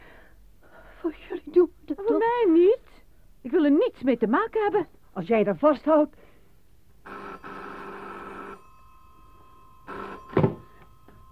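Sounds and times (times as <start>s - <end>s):
speech: 1.0s - 2.6s, 3.5s - 6.3s
telephone ringing with a buzzing ring: 7.0s - 11.3s
loud clunk: 10.3s - 10.9s.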